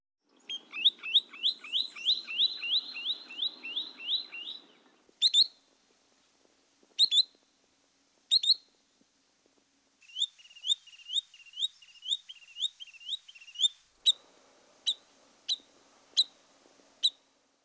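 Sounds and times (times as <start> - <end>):
Least Sandpiper calls with high sharp rising notes: 0.4 - 5.6, 10.0 - 17.6.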